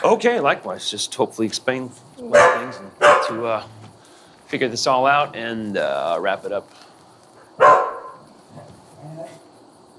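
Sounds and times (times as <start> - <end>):
speech: 0.0 - 3.8, 4.5 - 6.9
faint noise: 0.0 - 9.9
female foster rescue dog barking: 2.2 - 3.6, 7.5 - 9.4.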